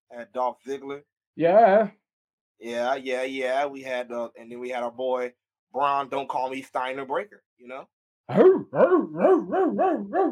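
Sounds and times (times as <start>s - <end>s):
speech: 0.1s - 2.0s, 2.6s - 10.3s
dog barking with yelping singsong quality: 8.3s - 10.3s.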